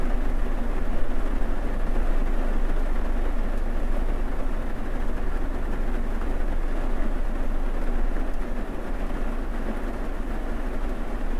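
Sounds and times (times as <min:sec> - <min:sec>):
rain patter heard from inside a car: 0:00.0 - 0:11.3.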